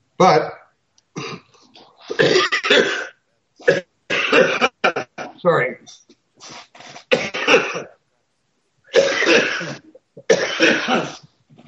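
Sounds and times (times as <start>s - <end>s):
speech: 0.2s - 0.6s, 5.4s - 6.0s
person coughing with rasping coughs: 1.2s - 1.5s, 2.1s - 5.4s, 7.1s - 8.0s, 8.9s - 11.2s.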